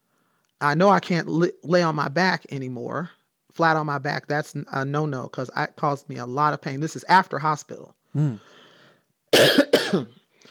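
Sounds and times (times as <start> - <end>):
speech: 0.6 - 8.6, 9.3 - 10.2
dry cough: 9.3 - 10.2.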